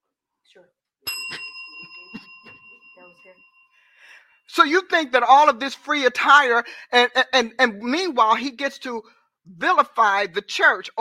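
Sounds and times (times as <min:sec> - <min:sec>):
speech: 0:00.5 - 0:10.9
bright metal bell struck and ringing: 0:01.1 - 0:04.0.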